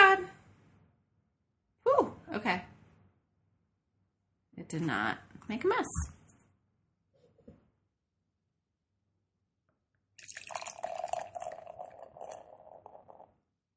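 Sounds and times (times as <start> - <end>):
speech: 2.3 - 2.7, 4.7 - 6.2
beer pouring into a glass: 10.2 - 13.6.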